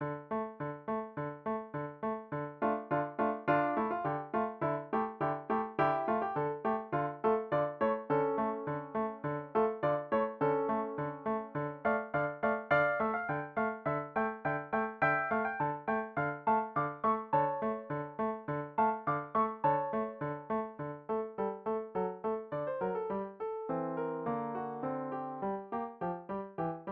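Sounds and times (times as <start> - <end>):
piano piece: 0.0 - 26.8.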